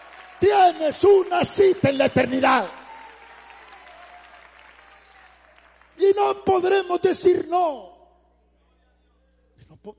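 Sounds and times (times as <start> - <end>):
congregation applauding during a religious sermon: 0.0 - 7.6
speech: 0.4 - 2.8, 6.0 - 7.9.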